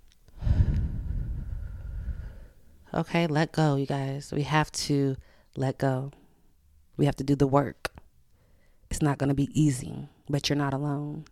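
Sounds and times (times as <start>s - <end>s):
deep breath in and out: 0.4s - 2.8s
speech: 2.9s - 6.2s, 7.0s - 7.8s, 9.0s - 11.3s.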